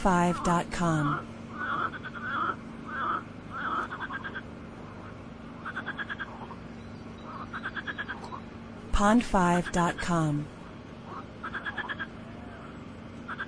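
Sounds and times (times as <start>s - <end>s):
speech: 0.0s - 1.3s, 9.0s - 10.6s
low hum: 0.0s - 13.4s
frog croaking: 0.4s - 6.6s, 7.2s - 8.5s, 11.0s - 13.4s
frog rattling pulses: 1.5s - 6.6s, 11.1s - 12.1s.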